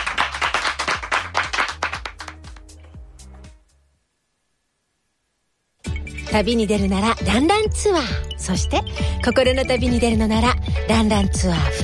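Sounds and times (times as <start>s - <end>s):
small audience applauding an athlete: 0.0s - 2.8s
speech: 6.3s - 11.8s.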